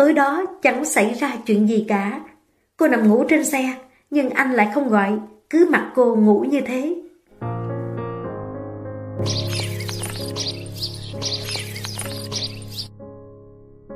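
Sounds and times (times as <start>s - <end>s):
speech: 0.0s - 7.0s, 9.2s - 9.6s
birds chirping at dawn: 9.2s - 12.9s
sustained tonal music: 9.2s - 13.8s.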